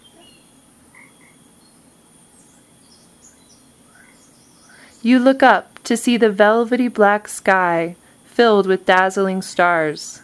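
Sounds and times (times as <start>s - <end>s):
soft night chorus of insects humming: 0.0s - 10.2s
speech: 5.0s - 10.2s.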